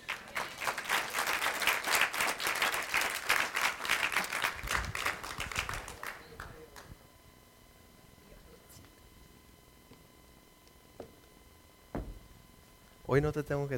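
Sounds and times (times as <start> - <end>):
audience applause: 0.0 - 6.9
faint knocks: 11.9 - 12.6
speech: 13.1 - 13.7.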